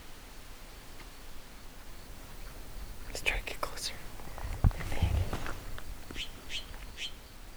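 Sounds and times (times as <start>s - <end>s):
Mexican jay chirping: 2.1s - 7.1s.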